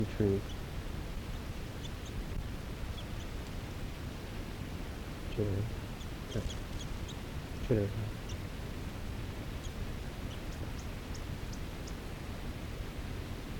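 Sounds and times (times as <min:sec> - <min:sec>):
speech: 0:00.0 - 0:00.6, 0:05.4 - 0:06.6, 0:07.7 - 0:08.2
male wild bird chittering near snowy water: 0:00.0 - 0:03.6, 0:05.4 - 0:12.1
brief low sounds: 0:00.0 - 0:13.5
steady hiss: 0:00.0 - 0:13.5.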